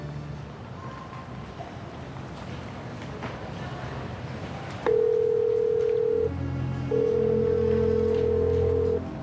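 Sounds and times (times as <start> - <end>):
telephone ringing with no one answering: 4.9 - 6.3, 6.9 - 9.0.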